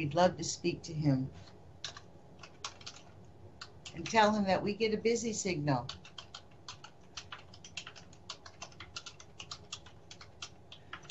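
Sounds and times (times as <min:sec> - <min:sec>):
speech: 0:00.0 - 0:01.6, 0:04.0 - 0:06.1
typing on a computer keyboard: 0:01.8 - 0:04.4, 0:05.8 - 0:11.1.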